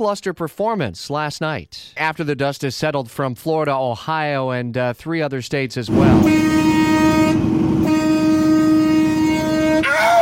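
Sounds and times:
speech: 0.0 - 7.4
low rumble of rolling rail cars: 5.9 - 10.1
train horn blast: 5.9 - 10.1.

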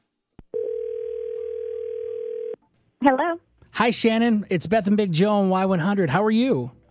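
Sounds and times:
long steady telephone ring tone: 0.5 - 2.6
speech: 3.0 - 6.8.

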